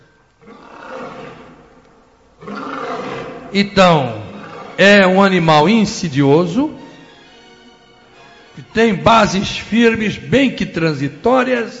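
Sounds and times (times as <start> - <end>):
lion roaring: 0.4 - 1.8, 2.4 - 5.2
speech: 3.5 - 4.2, 4.8 - 6.8, 8.6 - 11.7.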